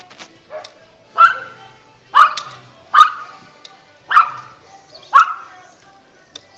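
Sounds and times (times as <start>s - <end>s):
small dog barking: 0.5s - 1.6s, 2.2s - 3.3s, 4.1s - 5.6s.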